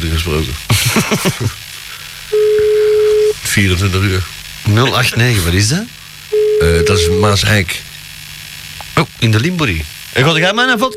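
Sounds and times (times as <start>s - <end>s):
speech: 0.0s - 1.7s, 3.6s - 6.0s, 6.6s - 7.9s, 9.2s - 10.9s
laughter: 0.7s - 1.7s
steady single-pitched telephone tone of a call being placed: 2.3s - 3.4s, 6.3s - 7.5s.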